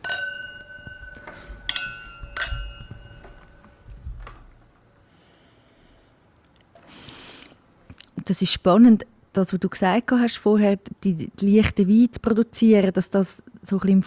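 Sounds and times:
glass handling sounds: 0.0s - 3.9s
wine glasses clinking in a toast during a wine tasting: 0.0s - 3.9s
speech: 8.3s - 14.0s.

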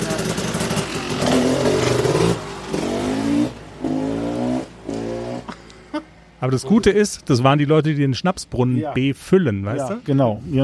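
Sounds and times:
tractor engine pulling away and shifting through gears: 0.0s - 7.1s
speech: 6.4s - 10.6s.

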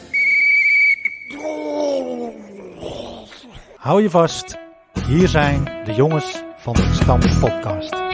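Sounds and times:
referee's whistle blast: 0.0s - 1.4s
speech: 3.8s - 8.0s.

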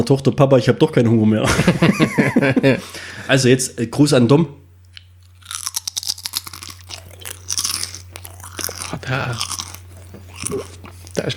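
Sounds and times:
speech: 0.0s - 4.6s, 9.1s - 9.5s, 10.5s - 11.3s
low steady hum: 0.0s - 11.3s
laughter: 1.4s - 3.0s
person chewing crunchy pizza-flavoured crisps: 4.9s - 11.3s.

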